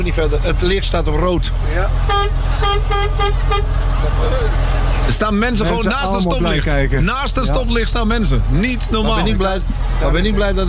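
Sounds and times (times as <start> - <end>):
loud continuous low engine rumble: 0.0 - 10.6
speech: 0.0 - 10.6
vehicle horn honking at a red traffic light: 2.0 - 3.8.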